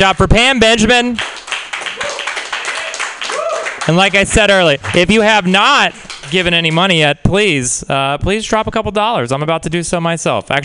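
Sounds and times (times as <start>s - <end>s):
speech: 0.0s - 1.4s, 3.9s - 10.6s
audience applauding: 1.0s - 6.9s.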